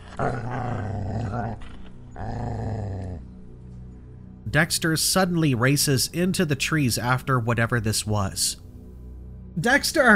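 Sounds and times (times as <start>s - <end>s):
dog's deep gurgling growl: 0.0s - 3.3s
speech: 0.2s - 2.6s, 4.5s - 8.6s, 9.6s - 10.1s.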